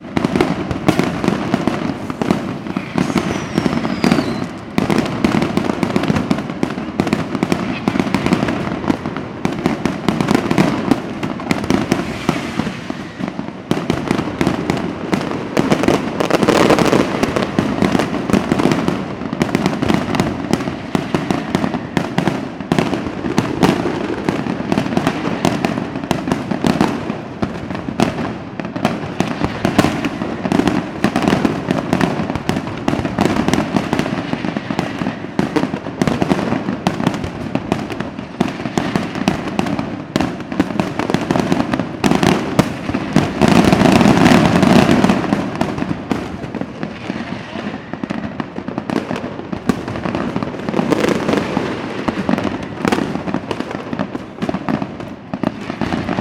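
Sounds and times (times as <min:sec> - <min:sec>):
intense fireworks display: 0:00.0 - 0:56.1.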